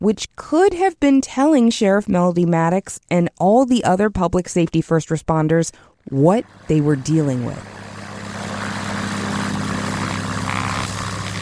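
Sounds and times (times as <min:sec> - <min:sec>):
speech: 0:00.0 - 0:07.8
single-engine Cessna propeller plane flying overhead: 0:07.6 - 0:11.4.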